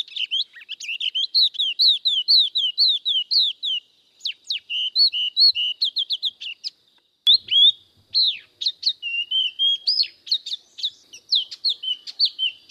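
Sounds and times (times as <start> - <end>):
Spot-throated babbler singing clear warbled whistles: 0.0 - 12.6.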